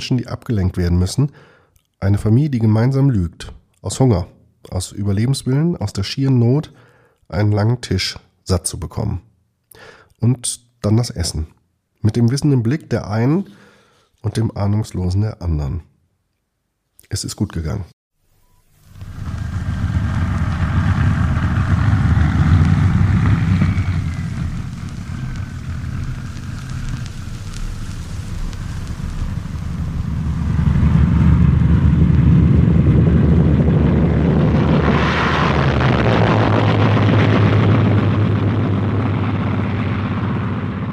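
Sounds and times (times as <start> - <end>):
speech: 0.0 - 15.9, 17.1 - 18.0
formation of bomber aircraft flying overhead: 18.8 - 40.9.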